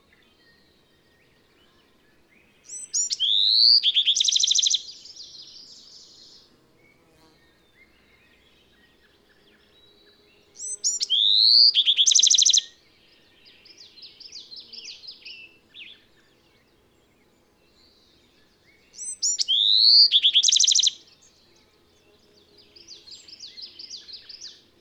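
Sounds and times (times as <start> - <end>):
bird song with whistles and trill: 0.1 - 24.6.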